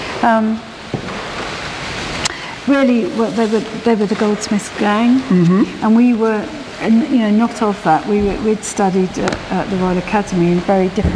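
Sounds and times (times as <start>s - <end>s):
heavy rain: 0.0s - 11.1s
speech: 0.2s - 0.7s, 2.7s - 11.1s
voiced sound: 2.2s - 11.1s.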